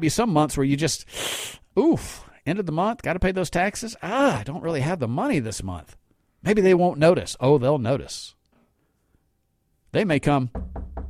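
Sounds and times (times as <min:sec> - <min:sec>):
speech: 0:00.0 - 0:08.4, 0:09.9 - 0:11.0
firm knocking on a door: 0:10.5 - 0:11.0.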